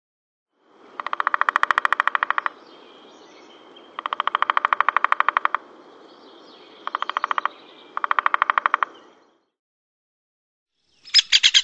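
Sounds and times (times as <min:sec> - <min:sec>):
woodpecker calling: 0:00.9 - 0:09.4, 0:11.0 - 0:11.6.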